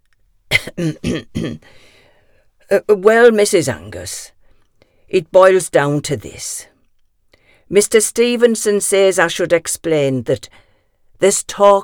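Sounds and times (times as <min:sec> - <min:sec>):
man coughing: 0:00.5 - 0:01.9
speech: 0:00.7 - 0:01.9, 0:02.7 - 0:04.4, 0:05.1 - 0:06.7, 0:07.7 - 0:10.6, 0:11.2 - 0:11.8
man's wheezy breath: 0:01.6 - 0:02.5, 0:07.3 - 0:07.7.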